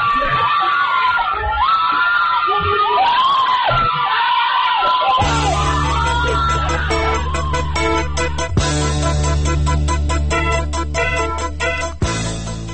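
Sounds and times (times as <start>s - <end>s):
crowd screaming and yelling in street protest: 0.0s - 8.8s
loud dense steady sound: 5.2s - 12.7s.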